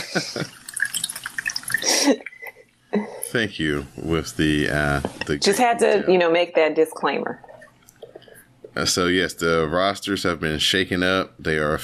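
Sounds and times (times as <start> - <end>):
laughter: 0.0 - 0.5
speech: 0.2 - 0.6, 2.0 - 2.3, 2.9 - 7.5, 8.8 - 11.8
beverage poured into a cup: 0.4 - 2.0.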